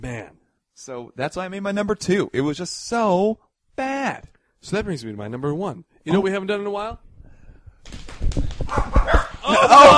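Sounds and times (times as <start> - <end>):
speech: 0.0 - 7.0
many dogs barking and yelping: 8.7 - 9.4
laughter: 9.4 - 9.9.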